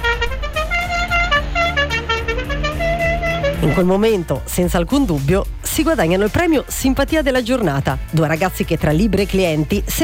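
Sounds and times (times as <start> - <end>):
small three-wheeled Ape van horn honking: 0.0 - 4.3
low engine rumble of three-wheeled van: 0.0 - 6.4
speech: 3.6 - 10.0.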